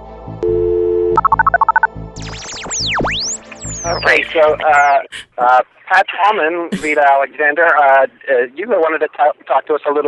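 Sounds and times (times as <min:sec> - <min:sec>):
telephone dial tone: 0:00.4 - 0:01.9
telephone touch-tone keypresses: 0:01.2 - 0:01.9
sweeping warbling electronic tones: 0:01.2 - 0:05.0
speech: 0:03.9 - 0:10.0.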